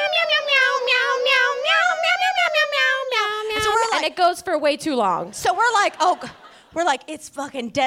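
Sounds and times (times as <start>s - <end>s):
tinny electronic button in a Christmas sweater playing meows to a bouncy tune: 0.0s - 3.4s
speech: 4.0s - 7.8s.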